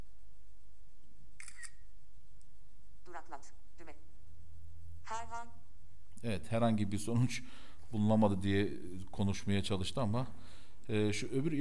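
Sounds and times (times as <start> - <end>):
hiss: 0.0 - 11.5
phone camera shutter clicks photographing a medicine box: 1.4 - 1.8
speech: 3.3 - 3.6, 5.3 - 5.6, 6.2 - 11.5.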